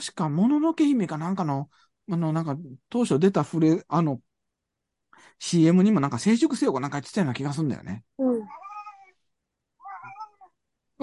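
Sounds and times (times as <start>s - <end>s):
speech: 0.0s - 4.3s, 5.2s - 8.6s
cat meowing for food: 8.4s - 9.2s, 9.8s - 10.5s.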